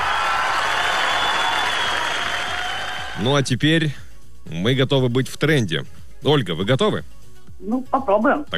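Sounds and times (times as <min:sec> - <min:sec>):
audience applause: 0:00.0 - 0:03.3
speech: 0:03.2 - 0:08.5.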